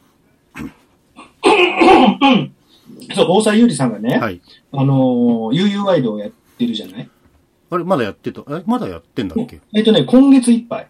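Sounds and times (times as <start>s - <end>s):
person clearing throat: 0.5s - 2.6s
speech: 1.7s - 2.5s, 3.2s - 7.1s, 7.7s - 10.8s.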